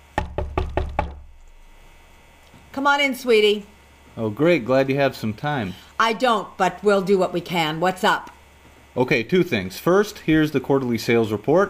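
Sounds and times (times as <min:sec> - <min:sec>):
knocking on an office door: 0:00.0 - 0:01.4
speech: 0:02.8 - 0:08.4, 0:09.0 - 0:11.6.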